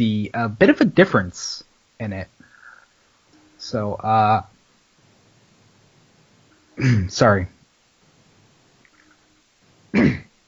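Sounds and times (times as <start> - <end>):
speech: 0.0 - 2.4, 3.7 - 4.5, 6.8 - 7.6
person clearing throat: 6.8 - 7.2, 9.9 - 10.3.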